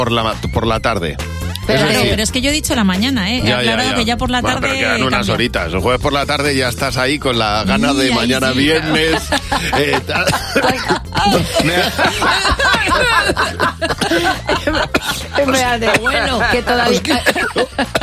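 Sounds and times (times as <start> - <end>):
speech: 0.0 - 18.0
people chuckling: 8.4 - 18.0
person coughing: 9.4 - 18.0.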